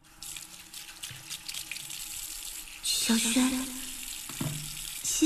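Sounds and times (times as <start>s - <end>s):
tap running into a sink for face washing: 0.2s - 2.8s, 4.0s - 5.1s.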